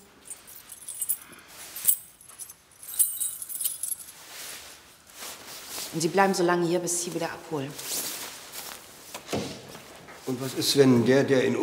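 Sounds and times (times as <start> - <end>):
keys jangling and clinking: 0.0 - 4.3
speech: 6.0 - 8.0, 10.3 - 11.6.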